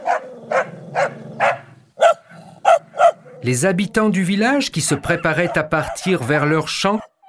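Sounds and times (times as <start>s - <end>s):
dog barking in sharp loud yaps: 0.0s - 3.4s, 4.8s - 6.3s, 7.0s - 7.2s
low rumbling chorus of dogs barking: 0.0s - 3.5s, 4.8s - 7.2s
speech: 3.4s - 7.0s.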